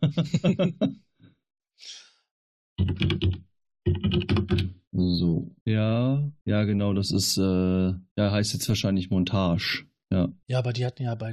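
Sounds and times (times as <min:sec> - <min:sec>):
person making drawn-out voiced sounds like humming or a laugh: 0:00.0 - 0:00.9
speech: 0:00.1 - 0:01.0, 0:02.8 - 0:03.4, 0:05.7 - 0:11.3
computer keyboard typing: 0:02.8 - 0:04.7.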